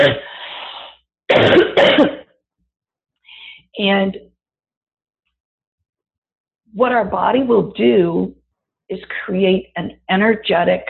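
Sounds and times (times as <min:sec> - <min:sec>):
speech: 0:00.0 - 0:00.3, 0:03.8 - 0:04.3, 0:06.8 - 0:10.8
raspy coughing: 0:01.3 - 0:02.3.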